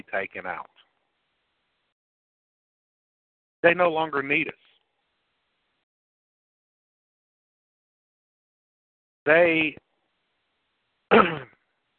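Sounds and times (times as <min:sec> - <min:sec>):
speech: 0:00.1 - 0:00.8, 0:03.6 - 0:04.7, 0:09.3 - 0:09.8, 0:11.1 - 0:11.5
single loud rough throat clearing: 0:11.1 - 0:11.6.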